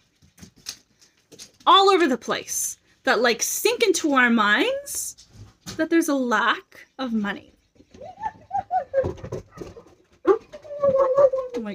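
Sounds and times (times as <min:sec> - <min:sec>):
speech: 0:01.7 - 0:05.2, 0:05.8 - 0:07.6
dog yipping and whining excitedly at a squirrel: 0:08.0 - 0:11.6.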